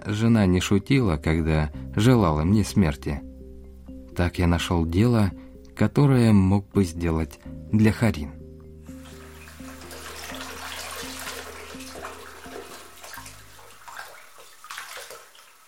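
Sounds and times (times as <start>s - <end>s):
speech: 0.1s - 3.3s, 4.2s - 8.4s
tap water running: 8.9s - 15.6s.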